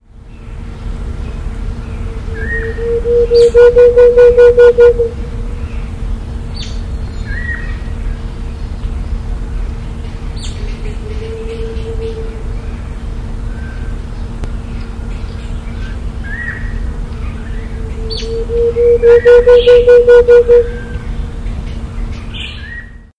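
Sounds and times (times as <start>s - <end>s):
Grallaria varia calling: 1.4s - 7.8s, 10.4s - 14.0s, 15.6s - 22.9s.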